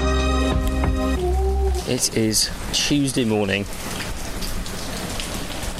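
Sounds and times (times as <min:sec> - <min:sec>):
heavy rain drumming on surfaces: 0:00.2 - 0:05.7
speech: 0:01.9 - 0:04.0.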